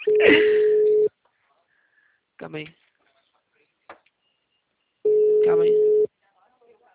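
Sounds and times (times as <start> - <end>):
telephone ringback tone while placing a call: 0.0 - 1.1, 5.1 - 6.1
speech: 2.4 - 2.9, 5.5 - 5.9.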